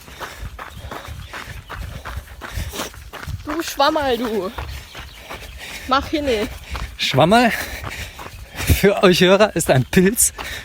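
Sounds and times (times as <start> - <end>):
footsteps of people walking: 0.0 - 10.6
speech: 3.6 - 4.7, 5.9 - 7.7, 8.8 - 10.6.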